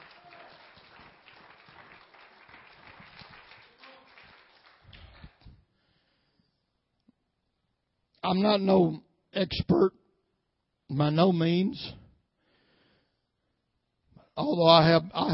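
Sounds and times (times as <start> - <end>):
crowd clapping in praise of God: 0.0 - 5.6
speech: 8.2 - 10.0, 10.9 - 12.0, 14.4 - 15.3.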